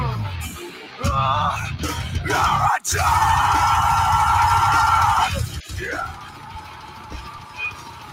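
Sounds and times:
heavy metal song with dense loud distorted instruments: 0.0s - 8.1s
male vocalist yelling in a long sustained vocal: 1.0s - 6.4s.

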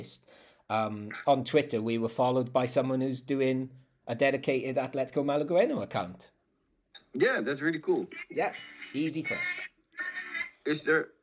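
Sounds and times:
speech: 0.0s - 6.4s, 7.1s - 11.2s
tinny music playing through a small phone speaker: 7.8s - 11.0s.

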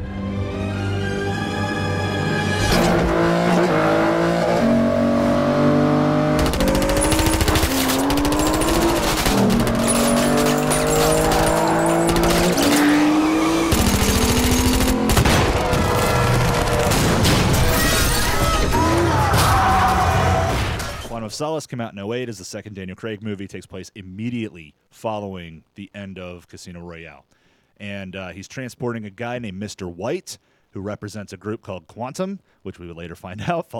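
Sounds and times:
driving car chase film score: 0.0s - 21.1s
car engines revving in a car chase: 2.2s - 17.7s
tires screeching and squealing: 2.4s - 20.6s
speech: 21.4s - 33.7s.

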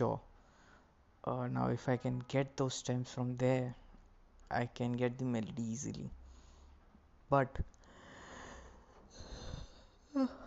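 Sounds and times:
speech: 1.2s - 3.8s, 4.5s - 6.2s, 7.3s - 7.8s, 10.2s - 10.4s
person yawning: 9.1s - 10.4s.

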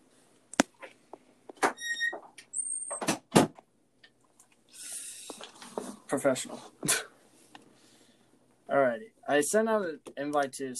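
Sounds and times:
door creaking and squeaking as it swings: 1.6s - 3.6s
speech: 6.1s - 7.0s, 9.4s - 10.7s.

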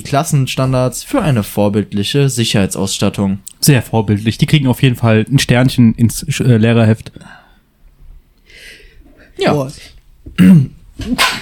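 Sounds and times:
speech: 0.0s - 7.4s, 9.4s - 11.4s
person sneezing: 10.4s - 11.4s.

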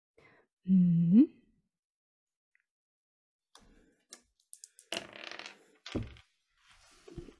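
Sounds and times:
speech: 0.6s - 1.4s
dice rolling on a table for a game check: 4.2s - 6.3s.

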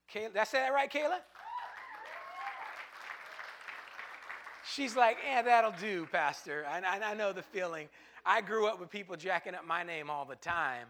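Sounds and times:
speech: 0.1s - 1.4s, 4.8s - 10.8s
audience clapping hands: 1.2s - 6.6s
person whooping over applause: 1.4s - 2.8s.

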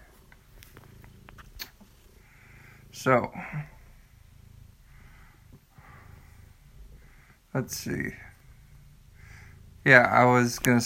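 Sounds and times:
soft clicks and rustles: 0.0s - 2.2s
domestic house cat purring: 0.0s - 10.8s
speech: 3.0s - 3.7s, 7.6s - 8.3s, 9.9s - 10.8s.

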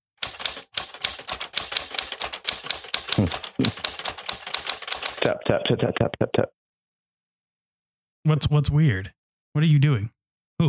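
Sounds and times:
man typing on a keyboard: 0.0s - 5.3s
speech: 3.2s - 4.0s, 5.2s - 6.6s, 8.2s - 10.6s.

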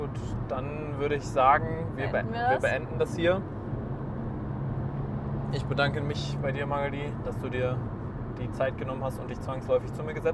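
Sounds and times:
speech: 0.5s - 3.6s, 5.5s - 10.3s
car passing on street outside heard from indoors: 1.8s - 8.4s.

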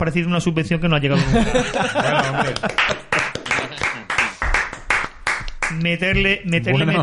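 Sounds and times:
speech: 0.0s - 3.0s, 5.7s - 7.0s
people laughing: 1.1s - 4.4s
small group applauding: 1.4s - 5.9s.

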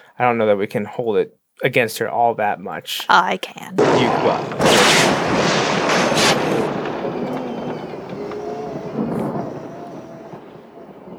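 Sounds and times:
speech: 0.2s - 5.2s
loud thunder cracking and rumbling: 3.8s - 11.1s.

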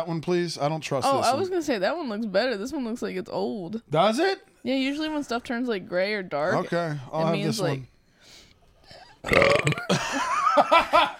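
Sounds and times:
speech: 0.0s - 7.9s, 9.2s - 11.1s
two people burping loudly together: 8.9s - 10.2s.

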